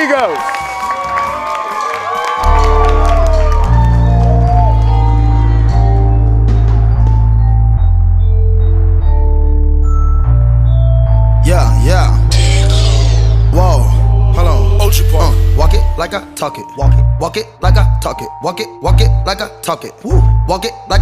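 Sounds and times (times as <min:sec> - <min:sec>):
faint applause and shouts: 0:00.0 - 0:06.2
crowd cheering and whooping: 0:00.0 - 0:06.4
heavy booming bass music: 0:02.6 - 0:21.0
speech: 0:16.4 - 0:21.0.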